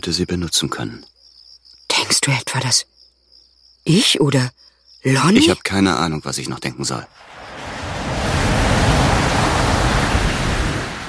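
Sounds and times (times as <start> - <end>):
speech: 0.0 - 1.2, 2.3 - 3.0, 3.9 - 7.4
ocean surf rolling onto the shore: 7.2 - 11.0.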